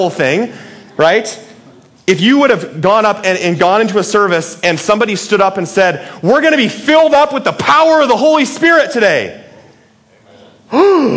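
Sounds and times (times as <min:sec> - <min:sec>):
speech: 0:00.0 - 0:01.5, 0:02.1 - 0:09.4, 0:10.7 - 0:11.1
person imitating a sharp shocked gasp: 0:10.7 - 0:11.1.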